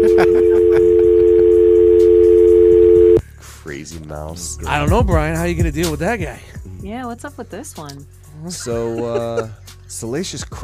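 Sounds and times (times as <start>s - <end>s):
speech: 0.0s - 0.5s, 4.1s - 10.6s
laughter: 0.0s - 1.6s, 8.5s - 9.7s
telephone dial tone after a call is hung up: 0.0s - 3.2s.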